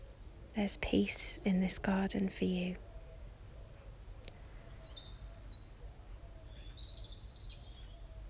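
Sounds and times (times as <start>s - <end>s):
steady low rumble of outdoor noise: 0.0s - 5.0s
faint traffic: 0.0s - 8.2s
small birds chirping and twittering in a garden: 0.0s - 8.2s
speech: 0.6s - 2.9s.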